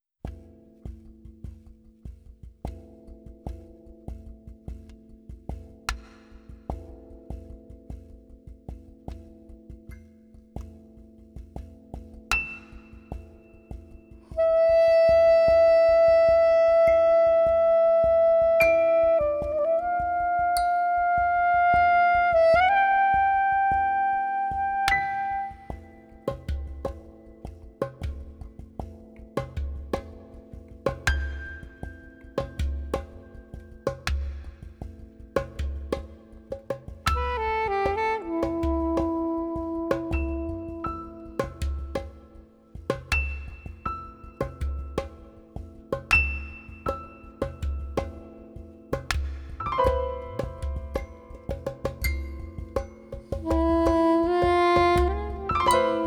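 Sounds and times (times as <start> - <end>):
piano: 0.0 - 56.0
shaker: 0.0 - 56.0
kalimba: 0.3 - 56.0.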